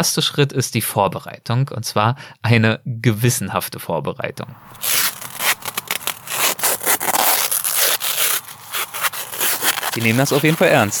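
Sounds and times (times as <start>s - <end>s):
speech: 0.0s - 5.3s, 10.0s - 10.9s
adhesive tape being wrapped around a leg: 4.7s - 10.9s.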